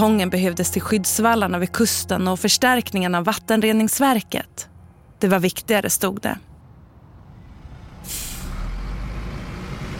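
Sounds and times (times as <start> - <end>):
speech: 0.0 - 6.5, 8.0 - 8.3
large bus engine rumbling as it pulls away slowly: 0.0 - 9.9
large bus air brakes hissing: 8.0 - 8.7.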